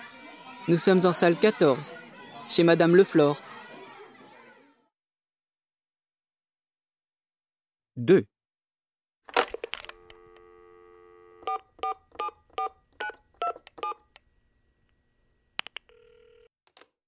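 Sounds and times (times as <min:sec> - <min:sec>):
speech: 0:00.7 - 0:03.5, 0:08.0 - 0:08.3
telephone ringing: 0:09.8 - 0:12.8, 0:15.9 - 0:16.5
telephone dial tone: 0:09.9 - 0:12.7, 0:15.9 - 0:16.5
telephone keypad tones: 0:11.4 - 0:14.0.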